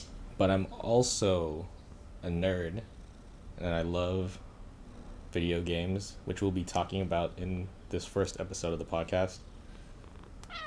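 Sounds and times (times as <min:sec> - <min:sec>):
low hum: 0:00.0 - 0:10.6
speech: 0:00.4 - 0:03.0, 0:03.6 - 0:04.4, 0:05.3 - 0:09.5
cat meowing: 0:10.5 - 0:10.6.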